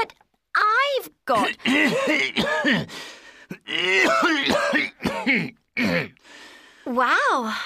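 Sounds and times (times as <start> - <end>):
speech: 1.0 - 3.1, 3.7 - 6.1, 6.9 - 7.6
person coughing harshly: 1.3 - 2.9, 3.5 - 6.2.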